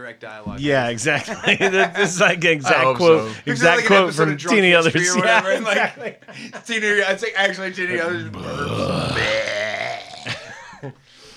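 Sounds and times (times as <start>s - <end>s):
speech: 0.1s - 9.5s, 10.8s - 11.0s
laughter: 0.5s - 11.0s
person imitating a burp with their voice: 7.9s - 10.6s.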